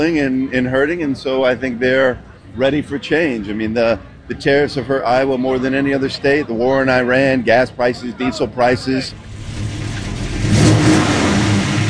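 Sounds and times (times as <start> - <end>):
speech: 0.0 - 9.3
vintage car engine revving at a classic car show in Oskaloosa Iowa: 9.1 - 11.8.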